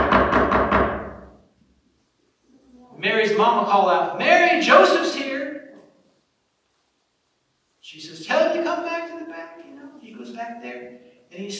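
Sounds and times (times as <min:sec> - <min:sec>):
hard heavy knocking on a door: 0:00.0 - 0:01.3
speech: 0:03.2 - 0:05.4, 0:10.2 - 0:11.5.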